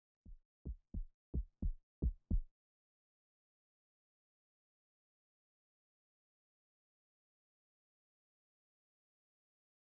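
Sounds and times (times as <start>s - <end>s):
looping heartbeat from a video game: 0.3s - 2.5s.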